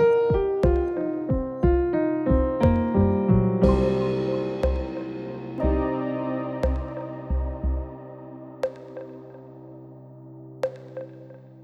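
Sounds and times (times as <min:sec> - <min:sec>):
chill piano solo: 0:00.0 - 0:11.6.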